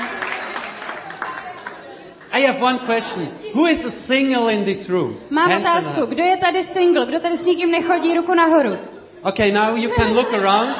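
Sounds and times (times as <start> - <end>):
audience clapping: 0.0 - 3.0
speech: 2.4 - 10.7
laughter: 9.8 - 10.7.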